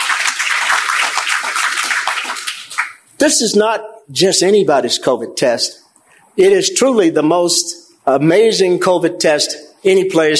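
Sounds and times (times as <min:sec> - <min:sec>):
crowd applauding: 0:00.0 - 0:03.0
speech: 0:03.2 - 0:05.8, 0:06.4 - 0:10.3.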